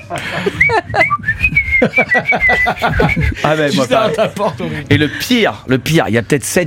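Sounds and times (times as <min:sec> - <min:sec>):
laughter: 0:00.0 - 0:04.8
speech: 0:00.1 - 0:06.6
person whistling a familiar bouncy tune: 0:00.5 - 0:03.4.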